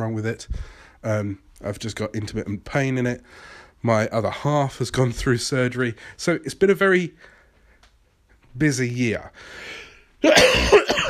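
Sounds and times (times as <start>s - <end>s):
speech: 0.0s - 7.3s, 8.6s - 10.9s
single harsh throaty cough: 10.2s - 11.0s.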